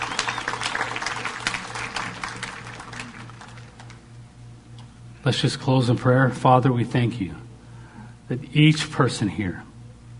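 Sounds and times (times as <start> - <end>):
crowd applauding: 0.0 - 4.0
low steady hum: 0.0 - 10.1
speech: 5.2 - 7.4, 8.3 - 9.7.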